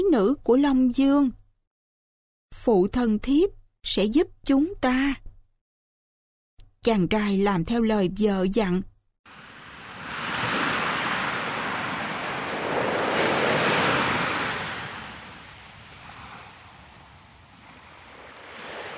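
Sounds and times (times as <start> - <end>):
speech: 0.0 - 1.4, 2.5 - 5.2, 6.8 - 9.4
ocean waves surging: 9.3 - 18.9.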